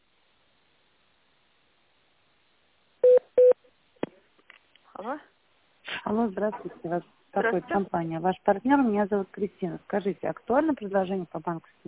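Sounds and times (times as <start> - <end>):
long steady beep on an automated phone menu: 3.1 - 3.5
speech: 5.1 - 5.3, 6.1 - 11.8.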